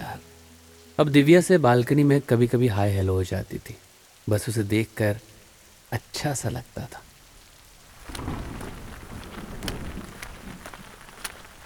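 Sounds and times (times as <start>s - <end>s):
heavy rain pouring: 0.0s - 11.6s
speech: 1.0s - 5.3s, 5.9s - 7.1s
sharp drips and splatters: 6.8s - 11.6s
low rumble of thunder: 7.4s - 11.6s.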